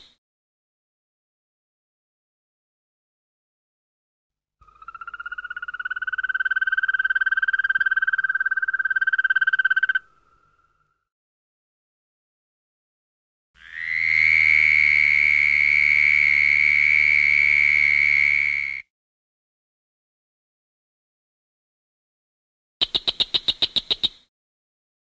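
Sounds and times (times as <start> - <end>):
frogs croaking in nature: 4.6 - 11.0, 13.6 - 18.8, 22.8 - 24.2.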